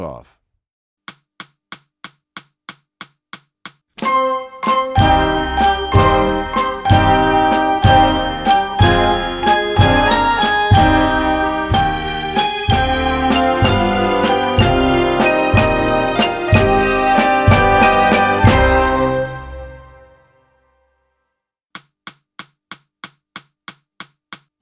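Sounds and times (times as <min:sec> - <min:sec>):
tarantella percussion: 0:01.1 - 0:19.9.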